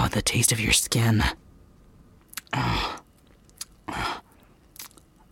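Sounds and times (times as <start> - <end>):
speech: 0.1 - 1.4
wet licking and mouth sounds behind an ear: 3.3 - 3.8, 4.8 - 5.0.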